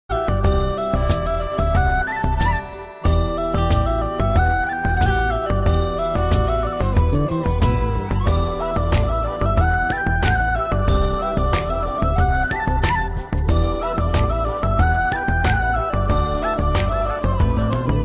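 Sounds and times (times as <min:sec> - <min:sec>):
flute instrumental ringtone: 0:00.1 - 0:18.0.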